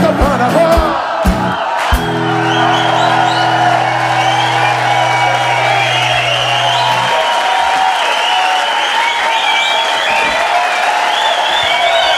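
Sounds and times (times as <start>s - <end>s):
whoops and cheers: 0.8s - 12.1s
large crowd applauding after live song: 1.0s - 12.1s
low held musical note: 2.1s - 7.4s.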